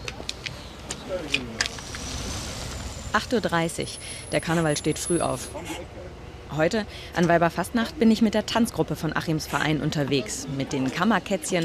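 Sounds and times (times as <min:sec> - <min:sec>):
bus engine rumble: 0:00.0 - 0:11.6
speech: 0:01.1 - 0:01.8, 0:03.1 - 0:11.6
brief rising whine: 0:01.4 - 0:05.5.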